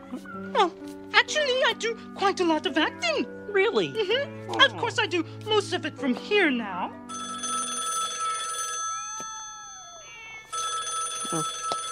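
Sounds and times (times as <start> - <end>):
speech: 0.1 - 7.0, 11.3 - 11.6
telephone ringing loudly: 7.1 - 11.9.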